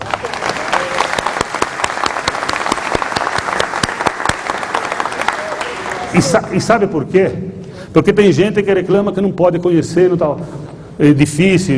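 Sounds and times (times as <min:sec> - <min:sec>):
audience applause: 0:00.0 - 0:06.5
speech: 0:06.2 - 0:11.7.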